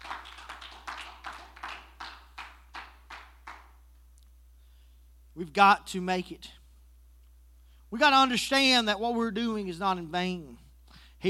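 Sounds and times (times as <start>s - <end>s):
church congregation clapping in unison during a worship service: 0.0s - 3.9s
speech: 5.4s - 6.6s, 7.9s - 10.6s.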